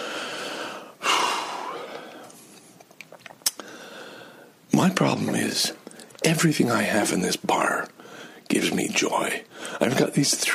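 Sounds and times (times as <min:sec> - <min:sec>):
heavy breathing from someone out of breath after exercise: 0:00.0 - 0:02.4, 0:03.6 - 0:04.6, 0:08.0 - 0:08.5, 0:09.5 - 0:09.9
speech: 0:04.8 - 0:10.5.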